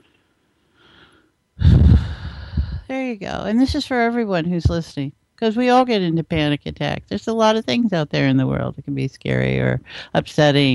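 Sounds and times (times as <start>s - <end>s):
slow deep calming breath during a panic attack: 0.6s - 2.8s
speech: 3.0s - 10.7s.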